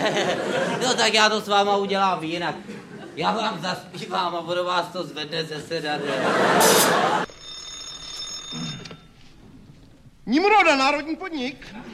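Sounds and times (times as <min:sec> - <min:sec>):
laughter: 0:00.0 - 0:01.1, 0:02.5 - 0:03.8, 0:05.8 - 0:07.3
speech: 0:00.0 - 0:07.4, 0:10.3 - 0:11.9
telephone bell ringing in a loud rattling burst: 0:06.7 - 0:09.3.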